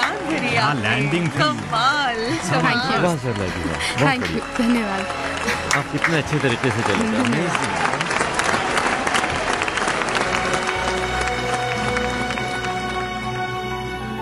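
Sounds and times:
laughter: 0.0s - 9.0s
crowd applauding: 0.0s - 14.1s
speech: 0.3s - 8.0s.

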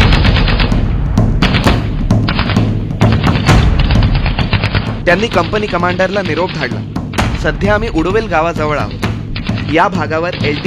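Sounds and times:
gunfire from a temple and sacred grove at a patrol: 0.0s - 5.5s
speech: 5.1s - 9.0s, 9.7s - 10.6s.

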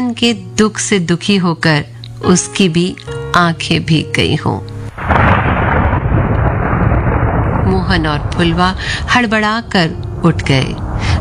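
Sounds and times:
speech: 0.1s - 4.8s, 7.8s - 11.1s
deep rumbling undertone of storm: 4.9s - 11.2s
heavy rain with large drops pouring in a storm: 4.9s - 11.2s.

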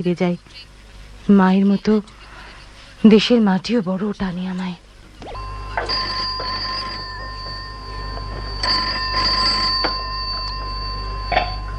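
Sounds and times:
speech: 0.0s - 0.7s, 1.3s - 2.2s, 3.0s - 6.0s
telephone ringing with a bright electronic bell tone: 5.2s - 11.7s.

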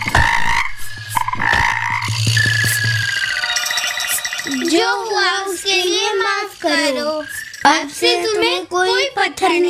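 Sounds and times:
chorus of frogs croaking: 0.0s - 8.4s
higher whistling trills: 0.8s - 8.1s
speech: 4.7s - 9.6s.

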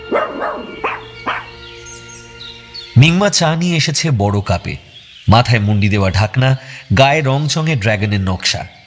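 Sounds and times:
dog barking in a courtyard: 0.1s - 1.6s
speech: 3.0s - 8.8s.

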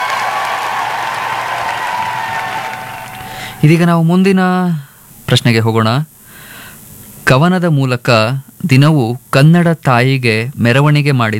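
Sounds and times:
audience applause for correct quiz answers: 0.0s - 3.7s
speech: 3.6s - 6.2s, 7.3s - 11.3s.

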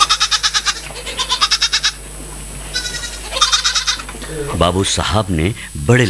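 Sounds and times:
goat bleating while grazing in front of a house: 0.0s - 2.0s, 2.7s - 4.6s
speech: 4.6s - 6.0s.

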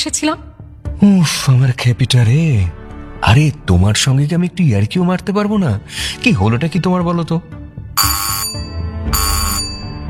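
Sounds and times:
speech: 0.0s - 8.6s
doorbell at a hotel room door ringing with electronic tone: 8.0s - 10.0s.

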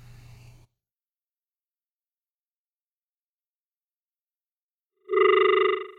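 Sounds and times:
telephone ringing on a call-in line: 5.0s - 5.9s.

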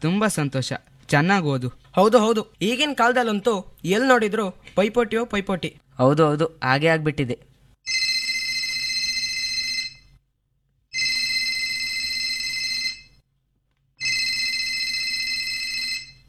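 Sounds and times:
speech: 0.0s - 7.5s
phone ringing with an incoming call: 7.9s - 10.2s, 10.9s - 13.2s, 14.0s - 16.2s.

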